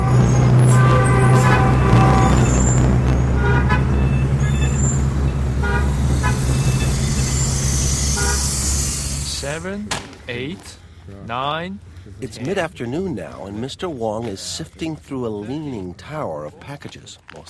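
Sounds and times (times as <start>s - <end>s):
car horn toots: 0.0s - 9.8s
modern Beijing street traffic roar of cars and engines: 0.0s - 17.4s
speech: 9.6s - 17.4s.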